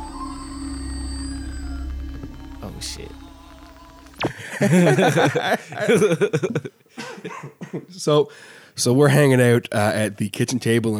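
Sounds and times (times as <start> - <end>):
Halloween witch lamp buzzy electronic drone with warbling tones: 0.0 - 5.3
speech: 2.6 - 3.2, 4.2 - 10.9
laughter: 4.2 - 7.9.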